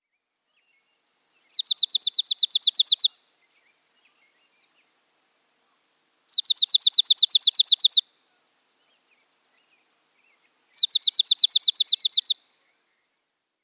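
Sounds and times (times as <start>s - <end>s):
dark-eyed junco trilling: 1.5s - 3.1s, 6.3s - 8.0s, 10.8s - 12.4s.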